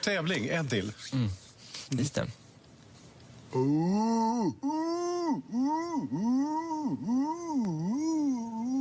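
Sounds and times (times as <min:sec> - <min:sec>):
speech: 0:00.0 - 0:02.4, 0:03.5 - 0:08.4
person imitating a wood pigeon's call: 0:03.6 - 0:08.8.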